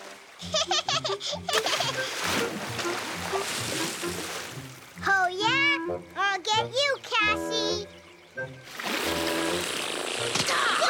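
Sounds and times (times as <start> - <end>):
water splashing and churning: 0.0 - 5.2, 8.6 - 10.8
speech: 0.4 - 10.8.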